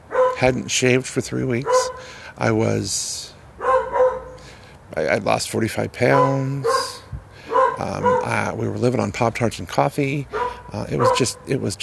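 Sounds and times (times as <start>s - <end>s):
dog barking sharply: 0.1s - 0.6s, 1.6s - 2.1s, 3.6s - 4.4s, 6.1s - 8.4s, 10.3s - 11.4s
speech: 0.4s - 3.4s, 5.0s - 6.8s, 7.8s - 11.8s
breathy hiss: 1.9s - 2.4s.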